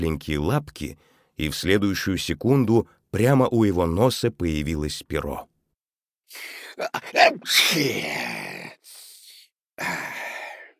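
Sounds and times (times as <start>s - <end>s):
speech: 0.0s - 5.5s, 6.3s - 8.4s, 9.8s - 10.1s
breathy sounds: 6.3s - 10.7s
carpenter sneezing in bed: 6.4s - 10.1s.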